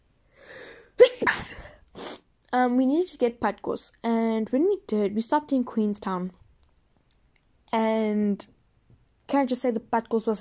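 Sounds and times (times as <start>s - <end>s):
soft breathy inhale: 0.3s - 1.0s
person sniffing: 0.4s - 2.3s
person sneezing: 0.9s - 2.3s
speech: 2.5s - 6.4s, 7.7s - 8.5s, 9.3s - 10.3s.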